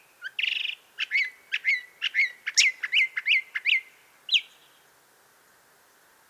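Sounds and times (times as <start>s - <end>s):
Northern Mockingbird Mimus polyglottos: 0.3s - 4.5s.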